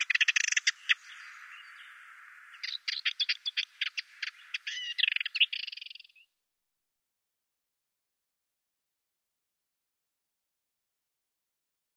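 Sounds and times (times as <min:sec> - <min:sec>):
Ménétries's warbler chattering into a buzzy rattle: 0:00.0 - 0:06.3.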